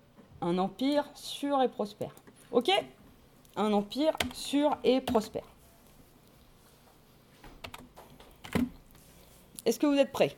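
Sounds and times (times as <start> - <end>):
speech: 0.4 - 3.0, 3.6 - 5.5, 9.7 - 10.3
soft typing on a computer keyboard: 4.1 - 5.3, 7.6 - 8.7.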